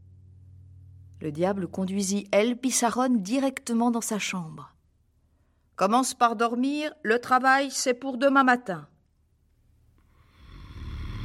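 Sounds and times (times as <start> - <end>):
speech: 1.2 - 4.8, 5.8 - 8.9
loud deep snoring: 10.2 - 11.2.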